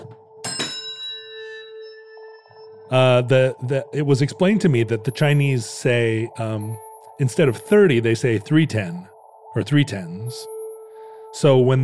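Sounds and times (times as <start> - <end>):
bells struck together ringing as a chord: 0.4 - 2.9
speech: 2.9 - 10.5, 11.3 - 11.8.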